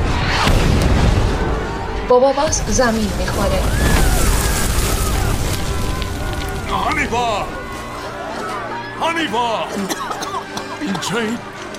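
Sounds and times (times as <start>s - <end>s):
bomb landing and exploding: 0.0s - 7.2s
speech: 2.1s - 3.9s, 6.7s - 7.6s, 9.0s - 10.1s, 10.8s - 11.5s.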